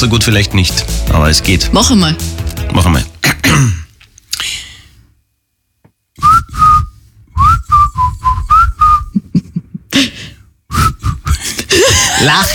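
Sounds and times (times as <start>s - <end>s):
speech: 0.0s - 3.8s, 12.2s - 12.5s
person whistling a pop melody: 6.2s - 9.1s, 10.7s - 11.4s.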